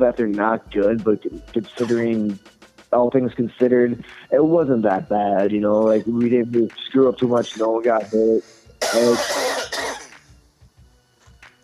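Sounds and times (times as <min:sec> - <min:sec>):
speech: 0:00.0 - 0:09.4
person coughing raspily: 0:08.8 - 0:10.1.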